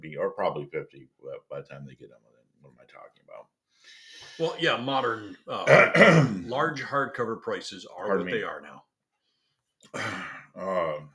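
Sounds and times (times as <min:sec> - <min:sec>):
speech: 0:00.0 - 0:08.8, 0:09.9 - 0:11.1
person clearing throat: 0:05.5 - 0:06.6, 0:09.9 - 0:11.1.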